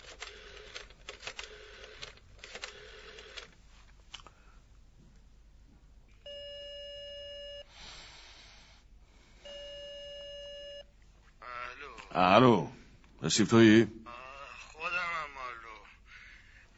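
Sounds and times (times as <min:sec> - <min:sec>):
phone dialing clicks: 0:00.0 - 0:03.5
faint hiss: 0:00.0 - 0:16.7
long steady electronic phone ringing tones: 0:00.2 - 0:03.4, 0:06.3 - 0:07.7, 0:09.4 - 0:10.9
speech: 0:12.2 - 0:14.0.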